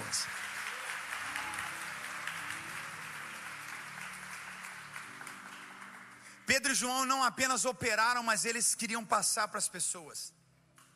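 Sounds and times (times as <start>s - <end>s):
church audience applauding: 0.0s - 6.8s
speech: 6.5s - 10.4s.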